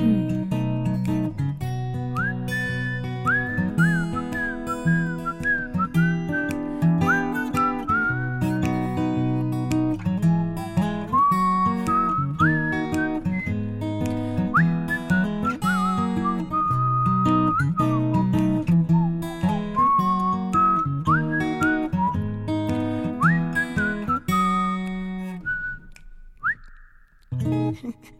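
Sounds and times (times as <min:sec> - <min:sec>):
person singing a little French song: 0:00.0 - 0:00.6
finger snapping: 0:00.0 - 0:27.6
instrumental backing with guitar: 0:00.0 - 0:28.1
woman whistling a melody in a little French song: 0:02.1 - 0:08.7, 0:10.3 - 0:13.6, 0:14.5 - 0:22.3, 0:23.0 - 0:27.1.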